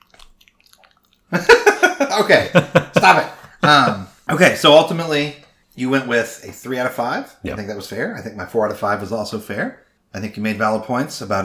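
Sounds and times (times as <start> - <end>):
person chewing food into a microphone: 0.0 - 1.4
speech: 1.3 - 11.4
laughter: 1.4 - 4.1.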